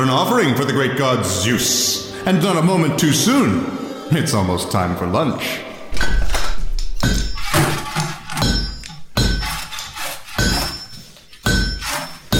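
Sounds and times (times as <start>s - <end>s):
speech: 0.0s - 6.1s
hammer blows on metal: 6.0s - 12.3s.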